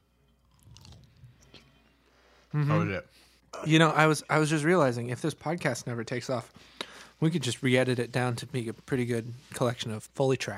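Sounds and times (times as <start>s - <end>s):
wet chewing of a soggy pickle: 0.4s - 1.7s
speech: 2.5s - 10.5s.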